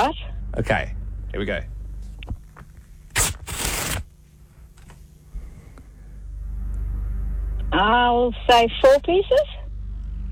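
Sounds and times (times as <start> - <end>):
speech: 0.0 - 1.8, 7.8 - 9.6
low rumble: 0.0 - 3.1, 5.1 - 10.3
paper rustling: 2.2 - 4.1
sheets of paper being ripped: 3.1 - 4.1.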